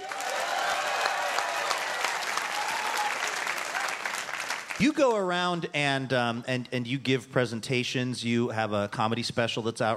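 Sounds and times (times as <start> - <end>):
crowd applauding: 0.0 - 5.0
speech: 4.8 - 9.9.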